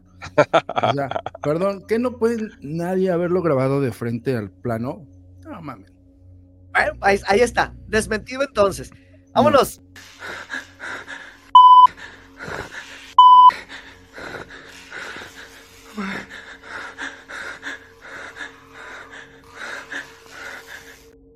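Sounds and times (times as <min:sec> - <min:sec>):
laughter: 0:00.2 - 0:01.6
speech: 0:00.4 - 0:05.9, 0:06.8 - 0:10.6
electronic censor bleeps over profanity: 0:11.6 - 0:11.9, 0:13.2 - 0:13.5.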